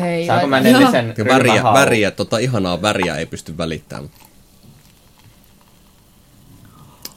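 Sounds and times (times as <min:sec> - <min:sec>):
speech: 0:00.0 - 0:04.3
sparkling drink fizzing in a mug: 0:04.0 - 0:07.1.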